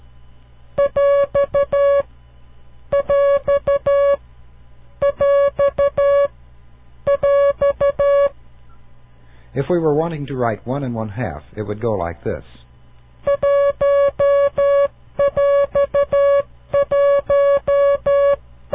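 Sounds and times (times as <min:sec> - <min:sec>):
coded electronic beeping tone signal for a mixed number separator: 0:00.8 - 0:02.1, 0:03.0 - 0:04.2, 0:05.0 - 0:06.3, 0:07.1 - 0:08.3, 0:13.3 - 0:18.7
speech: 0:09.6 - 0:12.6.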